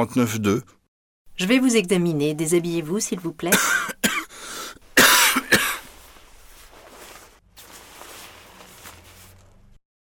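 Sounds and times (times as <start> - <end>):
speech: 0.0 - 0.8, 1.4 - 3.9
person with flu coughing harshly: 3.5 - 6.0.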